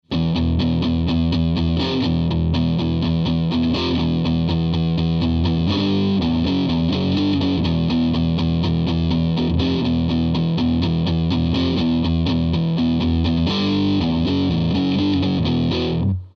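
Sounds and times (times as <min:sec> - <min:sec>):
guitar riff: 0:00.0 - 0:16.3.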